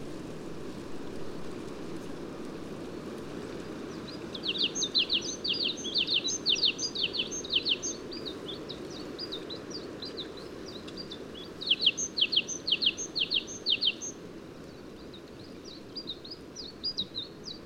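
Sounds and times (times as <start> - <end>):
steady low background noise: 0.0 - 17.6
great tit Parus major calling: 4.4 - 9.4, 11.0 - 14.2.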